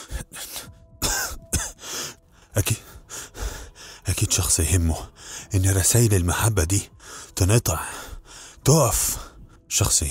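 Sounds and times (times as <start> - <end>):
person coughing harshly while gathering clothes and getting up: 0.1 - 1.8
speech: 2.6 - 2.9, 4.1 - 8.0, 8.7 - 10.0.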